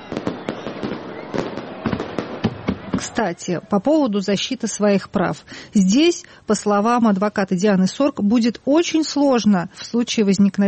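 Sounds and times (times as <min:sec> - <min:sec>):
fireworks exploding: 0:00.0 - 0:03.8
speech: 0:03.0 - 0:10.6.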